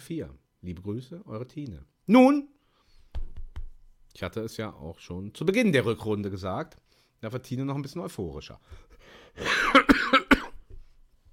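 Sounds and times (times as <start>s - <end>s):
speech: 0.1s - 2.6s, 4.2s - 10.2s
person forced coughing: 9.4s - 10.7s.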